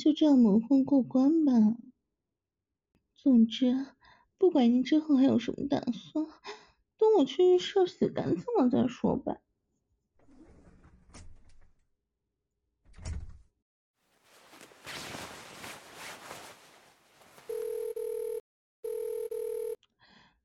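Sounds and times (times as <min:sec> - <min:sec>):
speech: 0:00.1 - 0:01.9, 0:03.2 - 0:09.4
phone ringing: 0:17.5 - 0:19.8.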